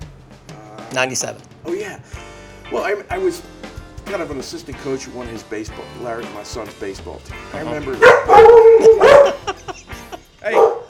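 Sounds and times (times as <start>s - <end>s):
speech: 0.9s - 9.1s, 10.4s - 10.7s
dog barking and yelping: 8.0s - 9.6s, 10.5s - 10.8s
laughter: 8.8s - 10.4s.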